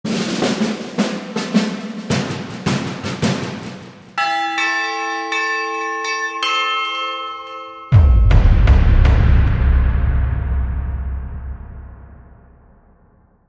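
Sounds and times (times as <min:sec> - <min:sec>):
drums: 0:00.0 - 0:04.2, 0:07.9 - 0:13.2
glockenspiel: 0:04.2 - 0:08.4
boom: 0:07.9 - 0:13.4.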